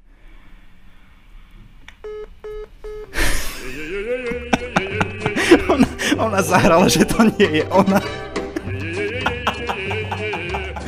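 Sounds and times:
telephone dialing beeps: 2.0 - 3.2
laughter: 3.1 - 10.8
speech: 6.2 - 8.2.

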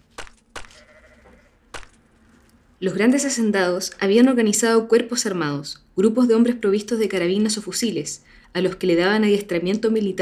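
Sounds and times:
sheep bleating: 0.7 - 1.6
speech: 2.8 - 10.2.

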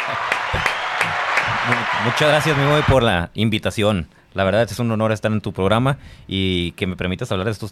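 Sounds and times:
applause welcoming the guest: 0.0 - 3.0
speech: 1.7 - 7.7.

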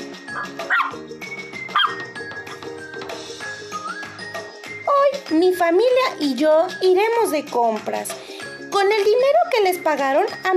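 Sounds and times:
music: 0.0 - 10.5
dog barking: 0.4 - 1.0, 1.7 - 2.0
speech: 5.3 - 10.5.

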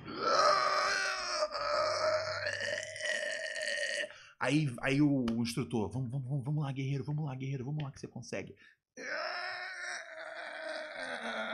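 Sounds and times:
voice imitating strained grunting and groaning of physiotherapy exercises: 0.0 - 4.2, 9.0 - 11.5
speech: 4.4 - 8.8.

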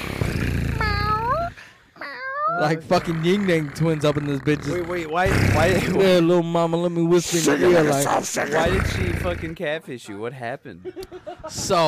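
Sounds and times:
voice imitating a cat meowing: 0.6 - 2.8
speech: 2.6 - 11.8.

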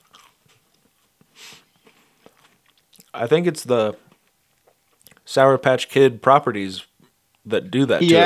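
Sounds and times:
chewing of a crunchy cookie: 0.0 - 3.2, 4.1 - 5.3
speech: 3.2 - 4.1, 5.3 - 8.2.

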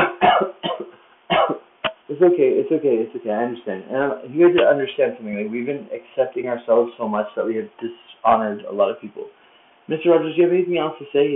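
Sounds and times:
harsh coughs: 0.0 - 1.6
speech: 2.2 - 11.3.

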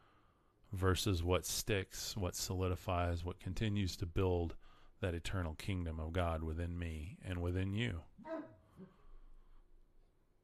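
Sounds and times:
speech: 0.7 - 9.0
dog barking in a dark hallway: 8.2 - 9.0.

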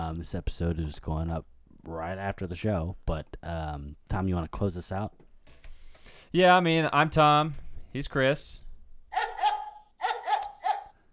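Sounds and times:
speech: 0.1 - 5.2, 6.0 - 8.6
big dog barking: 9.1 - 11.0.

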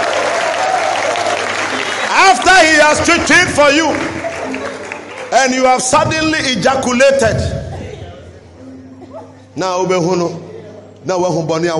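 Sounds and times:
audience applause: 0.0 - 6.5
speech: 2.2 - 4.2, 5.3 - 7.6, 9.6 - 10.4, 11.0 - 11.7.

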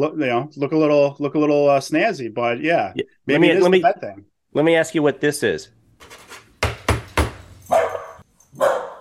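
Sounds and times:
speech: 0.0 - 6.2
dog barking: 7.6 - 8.9.

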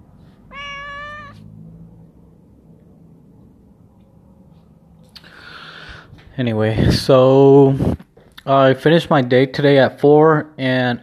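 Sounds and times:
cat meowing: 0.4 - 1.5
speech: 6.4 - 11.0.

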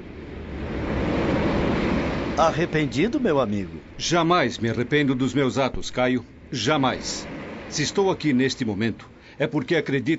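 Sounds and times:
faint breeze: 0.0 - 10.1
gentle sea waves washing around a large Roman sailing ship on the calm Aegean Sea: 0.0 - 10.1
speech: 2.4 - 10.1.

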